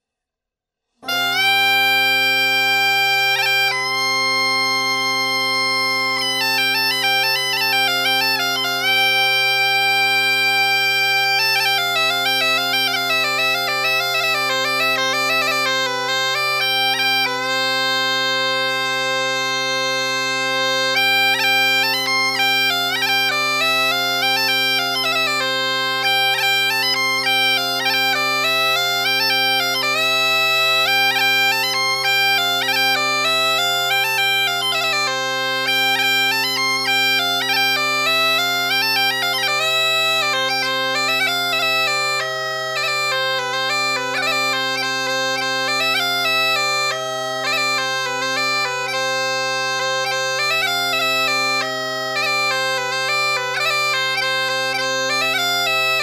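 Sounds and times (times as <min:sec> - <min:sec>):
gaita bagpipe playing: 0:01.0 - 0:56.0.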